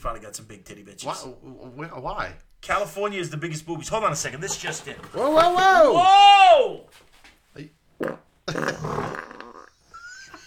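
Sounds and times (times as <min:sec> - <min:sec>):
speech: 0:00.0 - 0:09.1
loud rumbling fart: 0:08.0 - 0:09.8.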